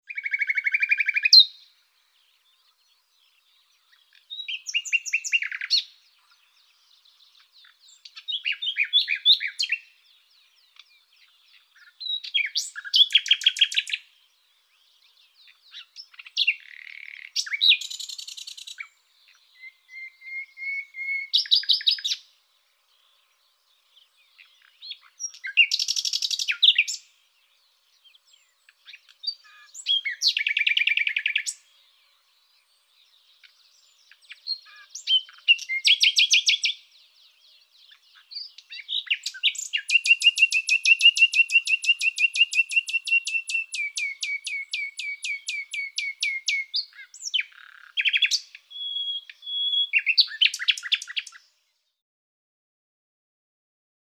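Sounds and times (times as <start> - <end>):
common nightingale Luscinia megarhynchos singing: 0.0 - 51.5.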